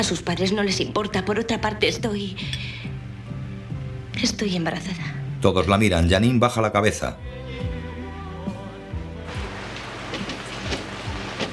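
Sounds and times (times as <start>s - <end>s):
speech: 0.0s - 2.9s, 4.2s - 7.3s
rain falling at night: 9.3s - 11.5s.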